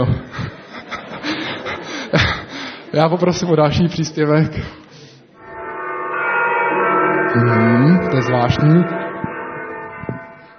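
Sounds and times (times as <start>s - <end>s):
speech: 0.0s - 0.2s, 3.0s - 4.8s, 7.4s - 9.0s
laughter: 0.0s - 2.9s
church bells ringing at a church: 5.4s - 10.5s.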